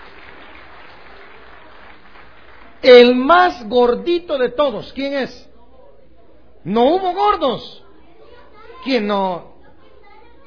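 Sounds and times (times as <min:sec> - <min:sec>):
crowd applauding: 0:00.0 - 0:03.3
speech: 0:02.8 - 0:05.5, 0:06.6 - 0:07.8, 0:08.8 - 0:09.5.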